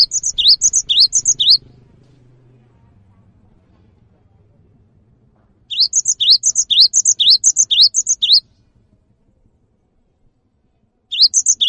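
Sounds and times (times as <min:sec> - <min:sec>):
cinereous tit singing high whistled phrases: 0:00.0 - 0:01.6, 0:05.7 - 0:08.4, 0:11.1 - 0:11.6.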